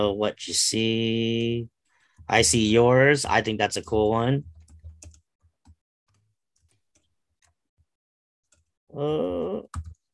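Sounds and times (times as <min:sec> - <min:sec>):
speech: 0:00.0 - 0:04.5, 0:09.0 - 0:09.9
typing on a computer keyboard: 0:04.5 - 0:05.8, 0:09.7 - 0:10.1.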